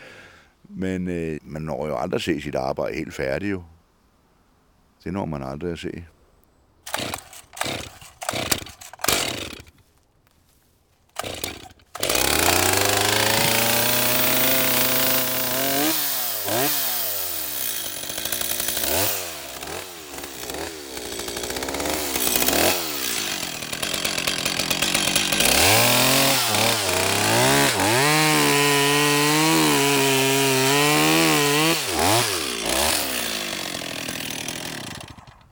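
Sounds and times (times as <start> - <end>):
speech: 0.7 - 3.8, 5.0 - 6.2
chainsaw with a dull ruined chain cutting wood: 6.8 - 10.0, 11.0 - 35.4.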